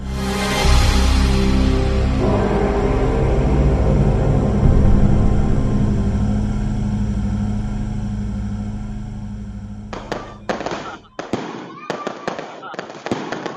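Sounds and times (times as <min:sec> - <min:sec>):
low steady rumble: 0:00.0 - 0:11.2
firecracker exploding on a pile of straw: 0:10.0 - 0:13.5.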